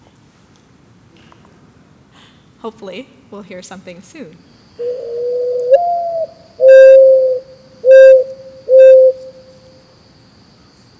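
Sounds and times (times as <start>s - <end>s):
speech: 2.6s - 5.3s
Mourning Dove cooing: 4.8s - 9.4s.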